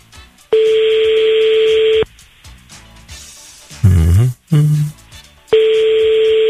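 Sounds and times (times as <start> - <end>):
telephone ring tone through a line: 0.6 - 2.0, 5.6 - 6.4
brief burst: 3.8 - 4.9.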